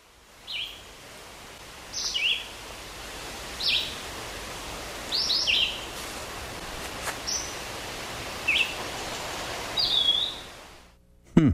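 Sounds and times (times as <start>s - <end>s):
background hiss: 0.0s - 11.5s
Red-eyed Vireo song: 0.4s - 0.9s, 1.9s - 2.6s, 3.6s - 4.0s, 5.1s - 5.9s, 7.3s - 7.6s, 8.4s - 10.5s.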